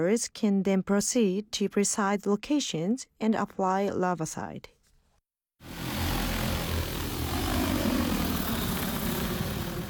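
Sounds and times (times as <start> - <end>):
speech: 0.0 - 4.8
drone propellers buzzing in flight: 5.6 - 9.8.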